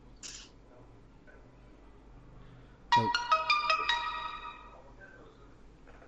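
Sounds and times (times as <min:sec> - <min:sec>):
electronic ringing tone of an outgoing phone call: 0:02.9 - 0:04.9.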